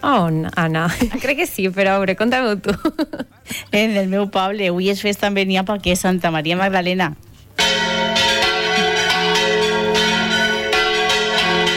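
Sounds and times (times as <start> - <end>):
speech: 0.0 - 7.3
church bells ringing from a bell tower: 7.6 - 11.7.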